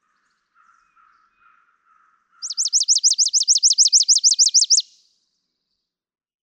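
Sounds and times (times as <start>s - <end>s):
Chipping Sparrow trill of high dry chipping notes: 0.0s - 5.0s.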